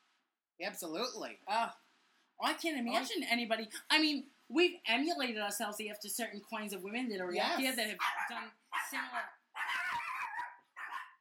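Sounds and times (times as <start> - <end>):
speech: 0.6 - 1.8, 2.4 - 9.4
small dog barking and yipping: 8.0 - 11.2.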